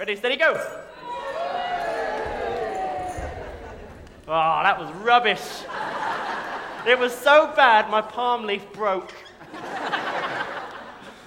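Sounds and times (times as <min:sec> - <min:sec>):
speech: 0:00.0 - 0:00.9, 0:04.3 - 0:09.7
audience cheering in a Mexican wave: 0:00.8 - 0:06.8
laughter: 0:01.7 - 0:07.6, 0:09.3 - 0:11.2.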